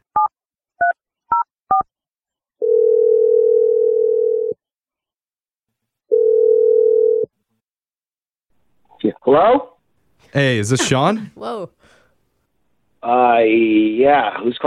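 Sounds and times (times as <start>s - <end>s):
long steady telephone ringing tones: 2.6s - 4.6s, 6.1s - 7.3s
speech: 9.3s - 9.7s, 10.3s - 12.0s, 13.0s - 14.6s.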